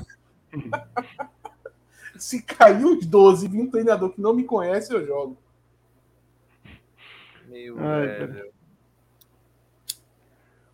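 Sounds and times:
low steady hum: 0.0s - 10.7s
laughter: 0.6s - 1.8s
speech: 2.2s - 5.4s, 7.6s - 8.6s
lighter being flicked: 9.2s - 10.1s.

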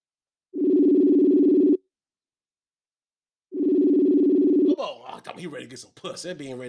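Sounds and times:
ringback tones on an outgoing phone call: 0.5s - 1.8s, 3.5s - 4.8s
speech: 5.2s - 6.6s.

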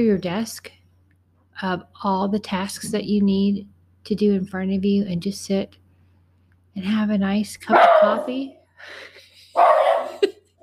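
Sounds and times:
speech: 0.0s - 0.8s, 1.6s - 5.8s, 6.8s - 10.3s
dog barking and yipping: 7.7s - 8.4s, 9.6s - 10.3s.

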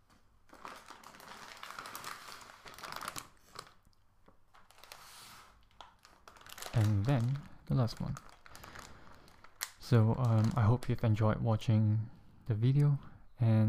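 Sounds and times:
plastic packets of assorted noodles crinkling and crunching: 0.1s - 11.0s
speech: 6.8s - 8.3s, 9.9s - 13.6s.

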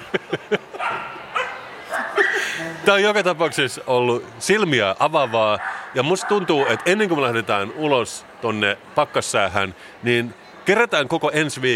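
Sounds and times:
laughter: 0.0s - 3.2s
speech: 0.1s - 0.8s, 2.6s - 11.7s
dog yipping downstairs: 0.8s - 2.4s.

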